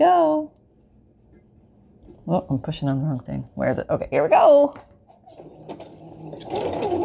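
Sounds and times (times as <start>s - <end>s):
speech: 0.0s - 0.6s, 2.3s - 6.8s
sewing machine sewing a zigzag stitch through glued layers of material: 5.4s - 7.0s.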